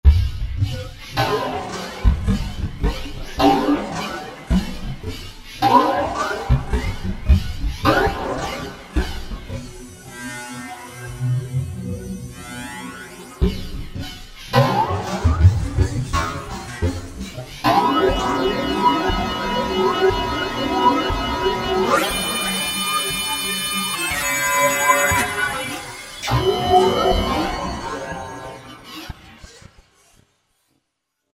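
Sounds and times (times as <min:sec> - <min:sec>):
synthesizer groove on a Roland V-Synth factory patch: 0:00.1 - 0:10.0, 0:13.4 - 0:28.7.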